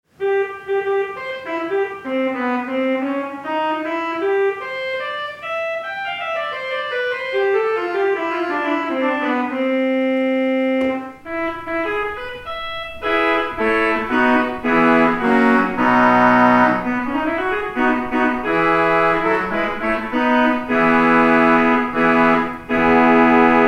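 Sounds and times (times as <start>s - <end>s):
Feldtrompete stop on a radio organ: 0.2s - 23.6s.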